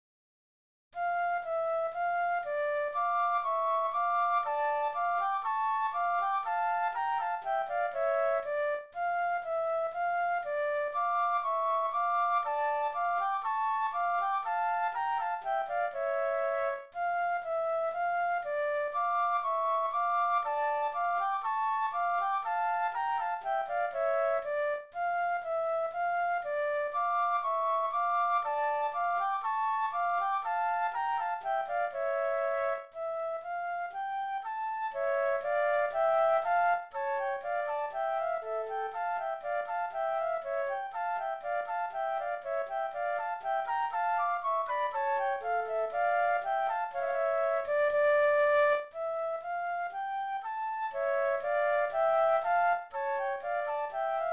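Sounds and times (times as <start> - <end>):
classical gavotte flute duet: 1.0 - 54.3.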